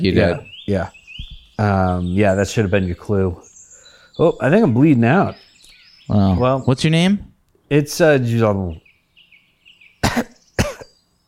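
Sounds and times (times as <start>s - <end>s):
speech: 0.0s - 1.0s, 1.6s - 3.5s, 4.2s - 5.4s, 6.1s - 8.8s
sharp coughs: 10.0s - 11.0s.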